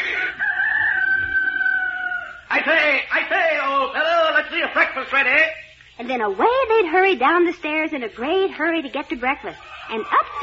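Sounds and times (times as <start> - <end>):
rooster crowing: 0.0 - 2.6, 9.6 - 10.4
speech: 2.6 - 10.4.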